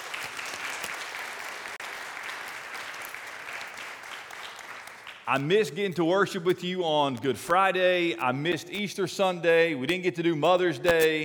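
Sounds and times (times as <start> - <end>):
congregation applauding: 0.0 - 7.0
speech: 5.3 - 11.2.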